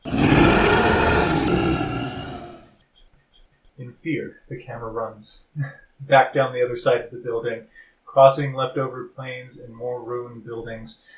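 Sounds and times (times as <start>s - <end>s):
monstrous creature roaring: 0.0s - 2.7s
speech: 4.0s - 11.1s.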